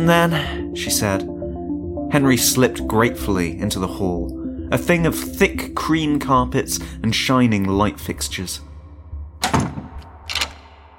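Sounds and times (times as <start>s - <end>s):
speech: 0.0s - 1.3s, 2.1s - 8.7s
heavy swinging door thudding shut: 9.4s - 10.9s.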